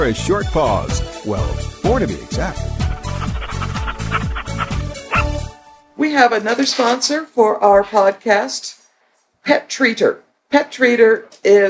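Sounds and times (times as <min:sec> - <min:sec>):
speech: 0:00.0 - 0:03.8, 0:06.0 - 0:08.8, 0:09.4 - 0:11.6
dog barking: 0:03.0 - 0:05.4.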